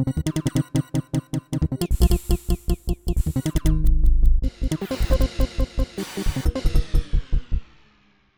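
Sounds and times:
sequenced beat: 0.1 - 8.2.

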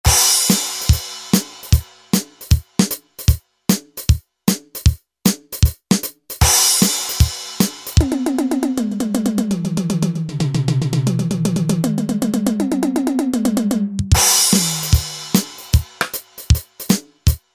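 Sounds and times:
rockabilly drum kit from E-mu Pro-Cussion factory ROM: 0.0 - 12.7, 13.6 - 17.4.

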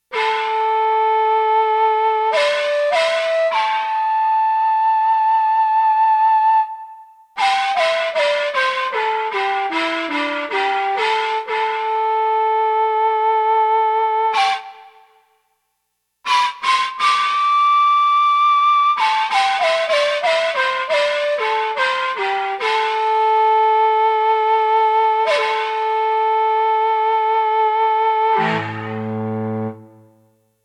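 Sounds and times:
Roland JX-1 factory preset flute: 0.0 - 15.4, 16.3 - 30.1.

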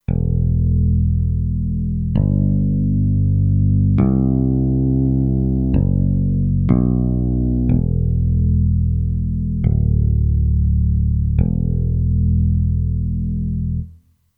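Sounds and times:
sustained E bass note on a Kurzweil K2500X synthesizer: 0.1 - 13.9.

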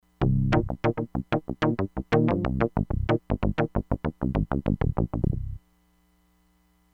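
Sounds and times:
Crumar Bit 99 synthesizer lower octave percussion: 0.2 - 5.6.

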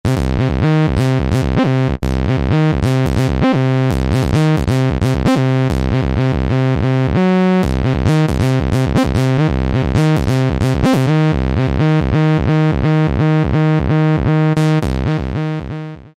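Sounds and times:
TB sawtooth synth bass: 0.0 - 16.1.

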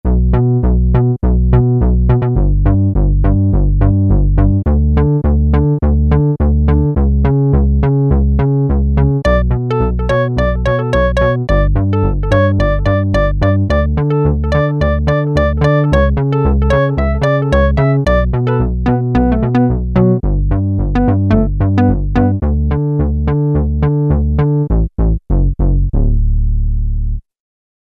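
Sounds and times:
Peavey DPM Spectrum Bass synth bass: 0.0 - 27.2.

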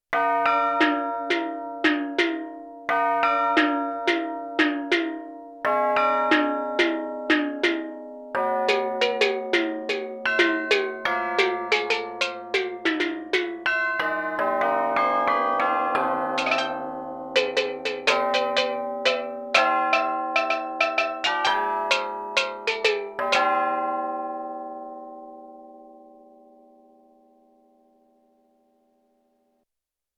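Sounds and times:
tubular bell sound on Yamaha TX16W: 0.2 - 26.2
steel drum sound on Yamaha TX16W: 0.8 - 2.6, 6.1 - 14.0, 16.3 - 23.5.

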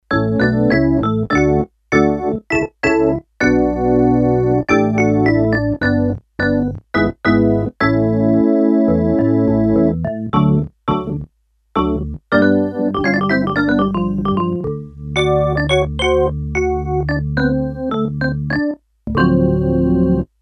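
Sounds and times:
Korg DS-8 synthesizer organ factory patch: 0.1 - 20.3.

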